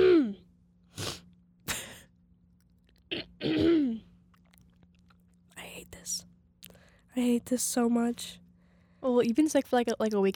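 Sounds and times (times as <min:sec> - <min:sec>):
sick person clearing throat: 0:00.0 - 0:00.4, 0:01.7 - 0:02.0, 0:03.1 - 0:04.1
sick person coughing: 0:00.0 - 0:00.4, 0:01.7 - 0:02.1, 0:03.1 - 0:04.1
speech: 0:07.2 - 0:08.4, 0:09.0 - 0:10.3.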